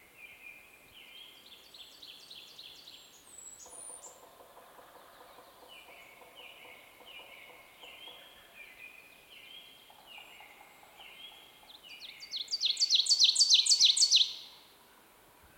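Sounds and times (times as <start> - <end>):
faint bird sounds: 0.0 - 15.5
Ovenbird chanting song, Seiurus aurocapilla: 5.2 - 14.6.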